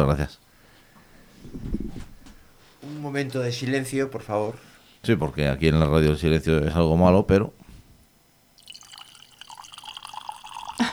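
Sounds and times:
speech: 0.0s - 0.5s, 1.5s - 1.8s, 2.8s - 7.6s
drink poured in a small stream for a toast: 8.6s - 10.9s.

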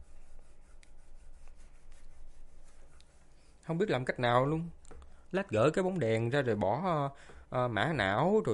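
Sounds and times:
rat scratching inside a plasterboard ceiling: 0.0s - 3.6s
speech: 3.7s - 8.5s.

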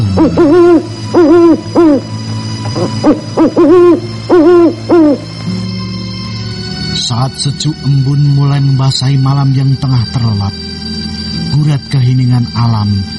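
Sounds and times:
owl-like night bird hooting at night: 0.0s - 5.4s
speech: 0.2s - 2.1s, 2.8s - 5.2s, 7.1s - 10.9s, 11.6s - 13.1s.

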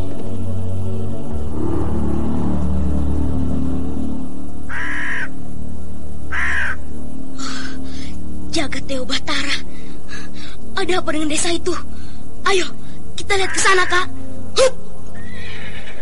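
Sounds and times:
steady low rumble: 0.0s - 15.4s
crows cawing over a village: 4.7s - 5.4s, 6.3s - 7.7s, 15.2s - 15.9s
speech: 10.9s - 14.8s.

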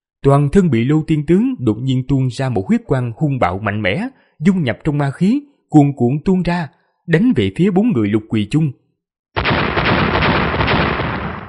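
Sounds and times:
speech: 0.2s - 8.8s
heavy explosion sound effect: 9.4s - 11.4s.

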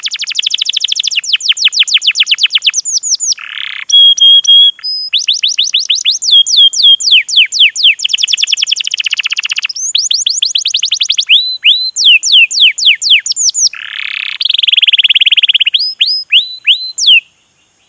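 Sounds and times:
canary lure recording singing: 0.0s - 17.3s.

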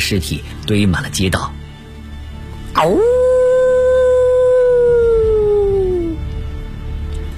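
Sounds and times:
speech: 0.0s - 1.6s, 2.8s - 3.3s
wolf howling mournfully: 2.8s - 6.2s.

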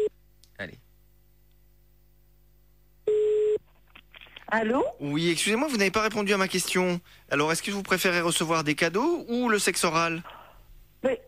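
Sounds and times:
speech: 0.6s - 0.8s, 4.5s - 10.4s, 11.0s - 11.2s
telephone tones as a call is redialled: 3.1s - 3.6s.

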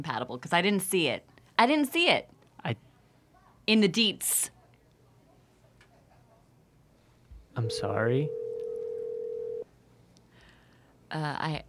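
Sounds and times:
speech: 0.0s - 2.9s, 3.7s - 4.6s, 7.6s - 8.4s, 11.1s - 11.6s
steady telephone tone: 7.6s - 9.7s.

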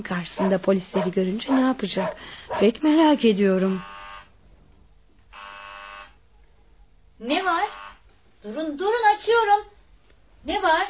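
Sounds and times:
speech: 0.0s - 3.9s, 7.2s - 7.8s, 8.4s - 9.7s, 10.4s - 10.8s
electric door buzzer: 3.6s - 4.4s, 5.3s - 6.2s, 7.3s - 8.1s.

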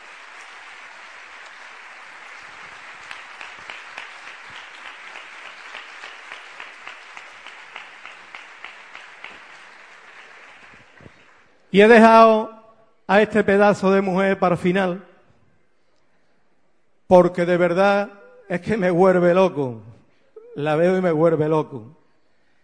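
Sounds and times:
audience applause settling into rhythmic unison clapping: 0.0s - 11.6s
speech: 11.7s - 12.5s, 13.1s - 15.1s, 17.1s - 20.0s, 20.6s - 22.0s.

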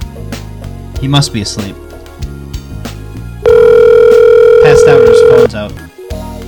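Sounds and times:
speech: 1.0s - 1.8s, 4.8s - 5.9s
telephone ringback tone on an outgoing call: 3.4s - 5.5s.

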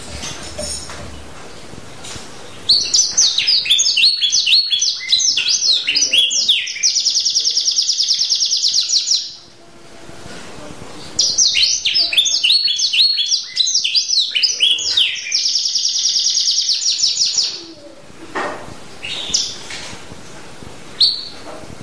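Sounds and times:
champion canary song of chirped phrases and rolling trill: 2.4s - 9.6s, 10.9s - 18.0s, 18.9s - 20.0s, 20.9s - 21.4s.

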